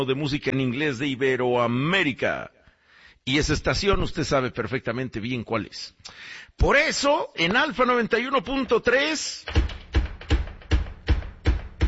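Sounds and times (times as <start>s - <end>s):
speech: 0.0s - 2.6s, 3.2s - 9.7s
person bringing breakfast knocking on a door: 9.5s - 11.8s.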